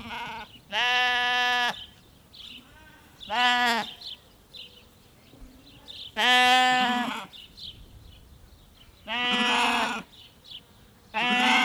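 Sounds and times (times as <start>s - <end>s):
small group of sheep bleating in a farmstead backyard: 0.0s - 1.8s, 2.6s - 4.0s, 6.2s - 7.3s, 9.1s - 10.1s, 11.1s - 11.6s
sparrows calling from a tree: 1.6s - 11.6s.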